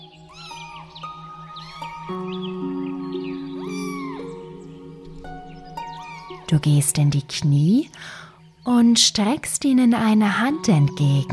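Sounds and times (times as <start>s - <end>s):
kittens mewing: 0.2s - 2.2s, 3.5s - 4.6s
speech: 6.5s - 11.3s.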